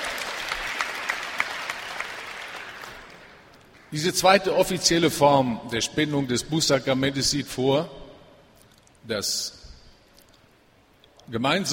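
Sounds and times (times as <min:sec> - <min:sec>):
room full of people applauding: 0:00.0 - 0:03.5
speech: 0:03.9 - 0:08.0, 0:09.1 - 0:09.6, 0:11.3 - 0:11.7.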